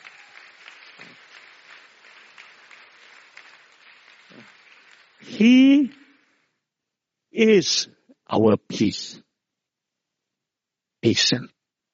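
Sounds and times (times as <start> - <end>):
crowd applause: 0.0 - 6.5
speech: 5.2 - 6.0, 7.4 - 9.2, 11.0 - 11.6.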